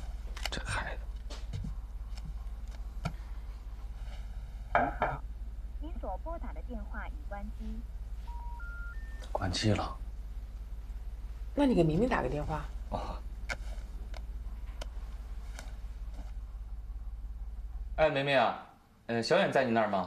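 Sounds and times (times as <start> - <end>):
low hum: 0.0 - 19.2
telephone keypad dialing tones: 8.3 - 9.3.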